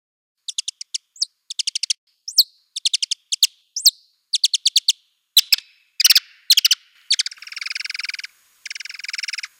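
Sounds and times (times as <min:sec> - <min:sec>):
free-tailed bat song of clicky chirps and buzzy pulsed trills: 0:00.4 - 0:09.5.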